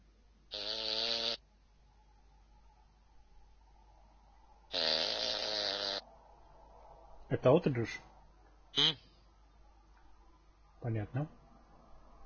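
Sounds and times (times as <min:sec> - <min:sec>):
faint steady hum: 0:00.0 - 0:12.2
person imitating snoring with their voice: 0:00.5 - 0:01.4, 0:04.7 - 0:06.0
speech: 0:07.3 - 0:08.1, 0:10.8 - 0:11.4.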